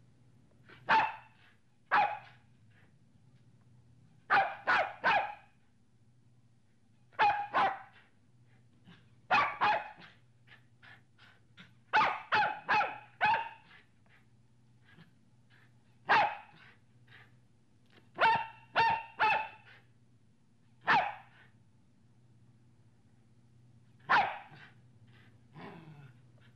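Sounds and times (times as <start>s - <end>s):
low steady hum: 0.0s - 26.5s
medium-sized dog barking: 0.8s - 2.4s, 4.3s - 5.5s, 7.2s - 8.0s, 9.3s - 10.2s, 11.9s - 13.8s, 16.0s - 16.7s, 18.2s - 19.8s, 20.8s - 21.4s, 24.0s - 24.7s.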